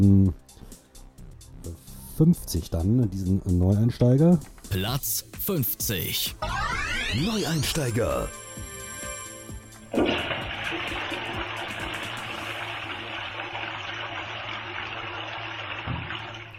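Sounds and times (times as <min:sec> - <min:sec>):
speech: 0:00.0 - 0:00.5, 0:02.2 - 0:08.4
toilet flushing with rushing water: 0:09.8 - 0:16.5.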